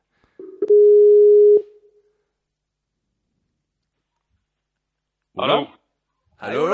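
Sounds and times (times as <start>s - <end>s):
ringback tone from an outgoing phone call: 0.4s - 1.8s
speech: 5.4s - 5.7s.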